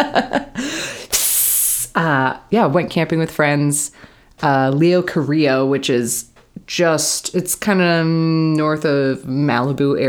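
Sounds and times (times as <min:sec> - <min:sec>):
speech: 0:00.0 - 0:00.8, 0:02.0 - 0:10.0
short vocal sounds: 0:01.0 - 0:02.1.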